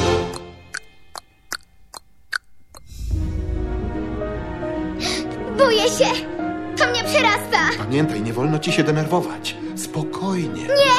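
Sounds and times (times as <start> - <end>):
clock ticking: 0.3 - 2.9
broad rumbling noise: 2.9 - 5.0
speech: 5.8 - 6.3, 7.2 - 10.9.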